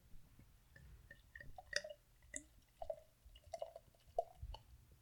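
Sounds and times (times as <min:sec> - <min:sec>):
barley wine fizzing in a glass: 0:00.8 - 0:04.7.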